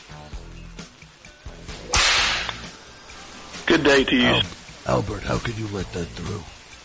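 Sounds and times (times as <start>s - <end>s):
whip cracking: 1.9s - 2.6s
speech: 3.7s - 6.6s.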